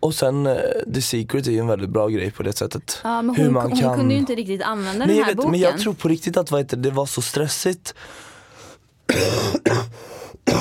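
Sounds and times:
speech: 0:00.0 - 0:08.3, 0:09.1 - 0:10.5
person coughing: 0:09.1 - 0:10.5.

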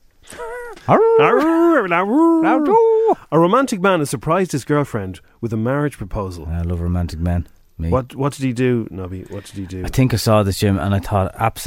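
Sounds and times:
speech: 0:00.4 - 0:11.6
dog barking and howling: 0:00.8 - 0:03.1.

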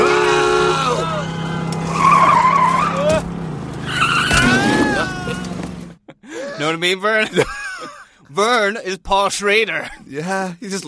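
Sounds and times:
race car engine drone: 0:00.0 - 0:06.0
race car tires squealing and skidding: 0:00.0 - 0:06.0
laughter: 0:03.8 - 0:08.2
speech: 0:06.8 - 0:07.5, 0:08.4 - 0:10.8.

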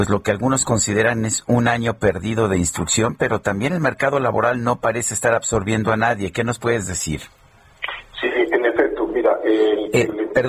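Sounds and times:
speech: 0:00.0 - 0:07.4, 0:09.6 - 0:10.4
narrowband voice on a poor telephone line: 0:07.8 - 0:10.4.

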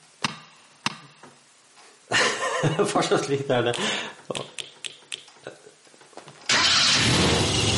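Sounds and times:
laughter: 0:02.1 - 0:03.2
speech: 0:02.6 - 0:04.5
car engine cranking and starting: 0:06.5 - 0:07.7.

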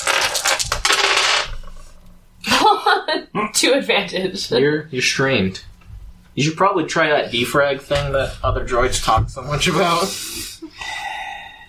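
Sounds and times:
green dice clattering and rattling across a hard surface: 0:00.0 - 0:01.8
speech: 0:03.4 - 0:05.7, 0:06.4 - 0:10.5.

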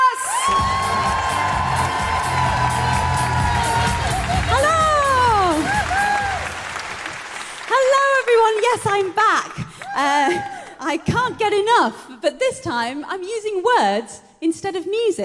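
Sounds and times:
live audience whooping and cheering: 0:00.0 - 0:07.6
live audience sustained applause: 0:00.3 - 0:09.0
people shouting: 0:00.4 - 0:06.5
speech: 0:08.7 - 0:15.2.

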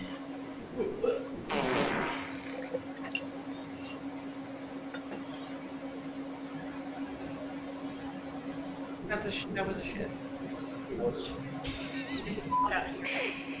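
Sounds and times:
vocal sounds: 0:00.0 - 0:01.4
steady electrical hum: 0:00.0 - 0:13.5
short raspy fart in a played video clip: 0:01.5 - 0:02.8.

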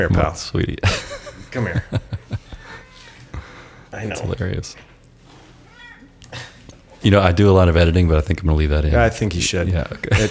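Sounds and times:
speech: 0:00.0 - 0:02.2, 0:03.9 - 0:04.9, 0:06.3 - 0:10.2
laughter: 0:00.8 - 0:02.7, 0:10.0 - 0:10.2
cat meowing: 0:05.6 - 0:06.2.

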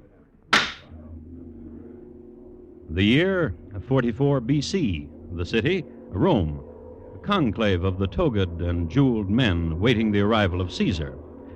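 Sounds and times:
gavel strike: 0:00.5 - 0:00.8
speech: 0:02.9 - 0:11.2.

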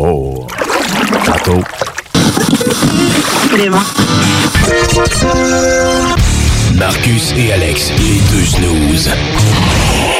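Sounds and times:
hands churning water into small waves: 0:00.4 - 0:03.6
speech: 0:01.5 - 0:10.1
laughter: 0:02.2 - 0:03.4.

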